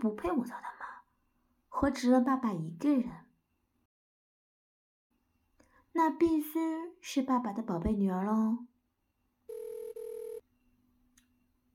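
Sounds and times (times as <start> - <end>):
speech: 0.0 - 0.8, 1.8 - 3.2, 6.0 - 8.7
telephone ringing with short electronic beeping tone: 9.5 - 10.4.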